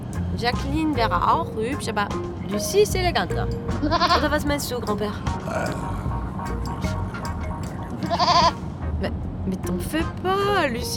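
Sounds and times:
steady low rumble of noise: 0:00.0 - 0:10.9
speech: 0:00.3 - 0:07.0, 0:08.1 - 0:10.9
goat bleating: 0:03.9 - 0:04.2, 0:08.1 - 0:08.6.

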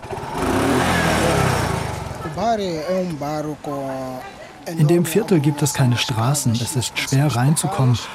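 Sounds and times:
small covered motorcycle rickshaw engine revving: 0:00.0 - 0:02.8
people's voices: 0:00.8 - 0:08.1
speech: 0:02.5 - 0:08.1.

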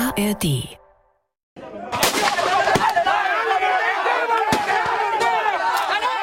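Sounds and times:
speech: 0:00.2 - 0:00.8
shouting voices during street fighting: 0:01.6 - 0:06.2
gunshots during street fighting in Managua Nicaragua: 0:01.9 - 0:03.0.

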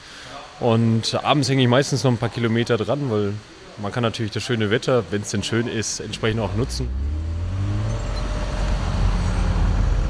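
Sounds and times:
speech: 0:00.3 - 0:07.2
road traffic at a truck and bus factory gate at shift change: 0:05.0 - 0:10.0
cars and heavier vehicles passing with low engine rumble: 0:05.4 - 0:10.0.

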